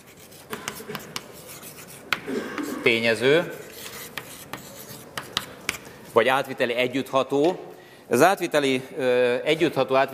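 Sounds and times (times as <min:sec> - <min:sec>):
handwriting a term during a lecture: 0:00.0 - 0:02.2, 0:03.7 - 0:05.5
speech: 0:02.8 - 0:03.6, 0:06.2 - 0:10.1.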